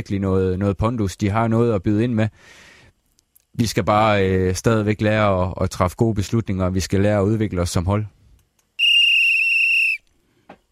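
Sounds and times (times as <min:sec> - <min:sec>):
speech: 0:00.0 - 0:02.7, 0:03.6 - 0:08.2
long high-pitched whistle blast: 0:08.8 - 0:10.1.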